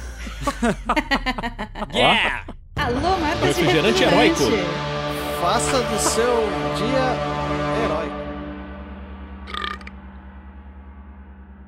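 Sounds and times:
laughter: 0:00.0 - 0:07.2
speech: 0:00.4 - 0:02.4, 0:03.5 - 0:08.1
long deep drawn-out burp: 0:09.4 - 0:09.9.

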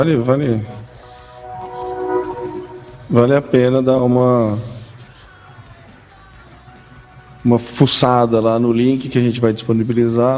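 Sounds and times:
speech: 0:00.0 - 0:00.8, 0:03.1 - 0:04.7, 0:07.4 - 0:10.3
train horn blaring: 0:00.5 - 0:04.8.

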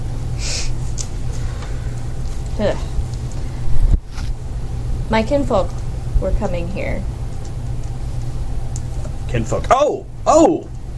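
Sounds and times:
low rumble: 0:00.0 - 0:10.9
breathy nasal sniffs: 0:00.4 - 0:00.8
speech: 0:02.6 - 0:02.9, 0:05.1 - 0:07.2, 0:09.3 - 0:10.7.

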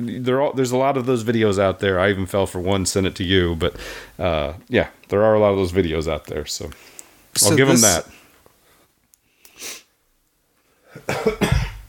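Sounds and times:
speech: 0:00.0 - 0:08.2, 0:11.0 - 0:11.5
breathy intake of air: 0:03.8 - 0:04.2
harsh coughing: 0:10.9 - 0:11.8.

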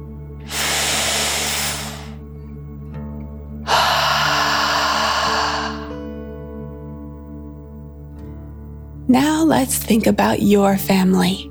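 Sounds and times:
deep breath in and out: 0:00.5 - 0:02.2, 0:03.7 - 0:06.2
soft sustained musical tones: 0:01.8 - 0:11.4
speech: 0:09.1 - 0:11.4.

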